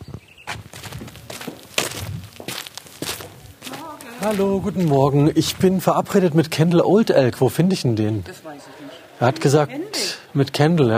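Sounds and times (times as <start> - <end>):
footsteps of a person walking in through an open side entrance: 0.0 - 6.5
speech: 4.2 - 10.9.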